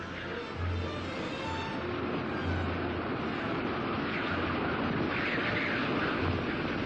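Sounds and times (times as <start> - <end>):
deep low buffeting rumble of wind gusts: 0.0 - 6.8
dense hiss of blowing snow and ice: 0.0 - 6.8
strong wind roaring: 0.0 - 6.8.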